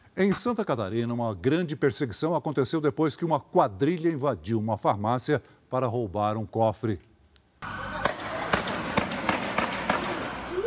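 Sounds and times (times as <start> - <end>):
speech: 0.2 - 7.8
gunshots: 8.0 - 10.6.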